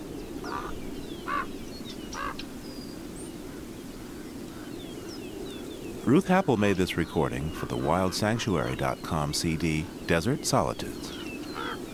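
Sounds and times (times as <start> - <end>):
Chihuahuan raven croaking calls: 0.4 - 2.5, 6.0 - 11.9
speech: 6.1 - 11.2.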